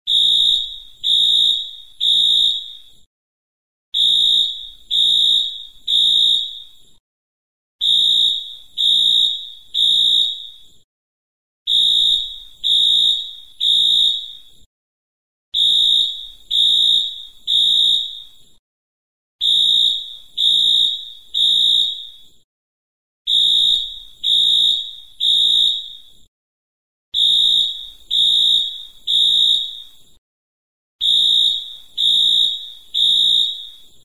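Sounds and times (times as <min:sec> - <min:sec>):
fire drill alarm: 0:00.1 - 0:03.0, 0:04.0 - 0:06.8, 0:07.8 - 0:10.6, 0:11.7 - 0:14.5, 0:15.6 - 0:18.3, 0:19.4 - 0:22.2, 0:23.3 - 0:26.0, 0:27.2 - 0:29.8, 0:31.0 - 0:33.9.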